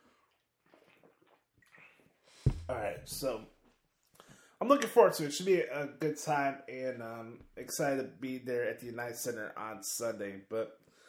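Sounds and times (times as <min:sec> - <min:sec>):
quiet sips and swallows of water: 0:00.0 - 0:02.2
object set down with a sudden loud thump: 0:02.5 - 0:03.3
speech: 0:02.7 - 0:03.6, 0:04.6 - 0:10.9.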